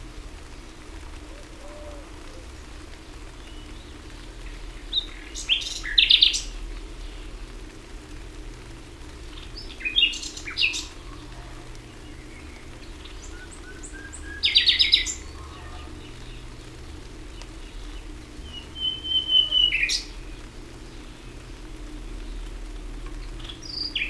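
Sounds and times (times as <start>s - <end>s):
common nightingale singing: 3.3s - 7.3s, 9.3s - 24.0s.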